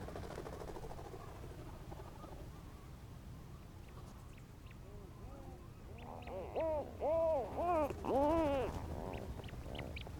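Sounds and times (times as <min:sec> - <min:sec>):
rhinoceros auklet uttering arched moaning groans: 0:05.2 - 0:09.2.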